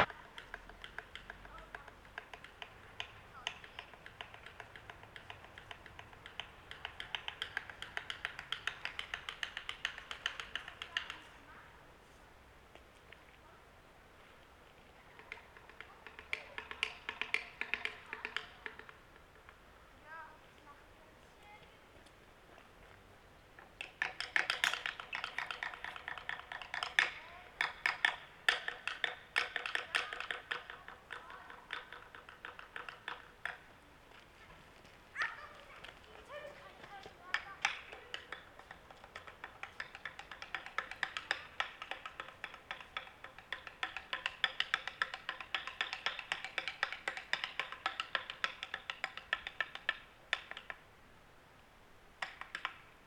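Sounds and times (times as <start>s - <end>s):
small wooden sticks knocking on small wooden sticks: 0.0s - 11.3s, 15.1s - 19.6s, 23.6s - 50.8s, 52.2s - 53.0s.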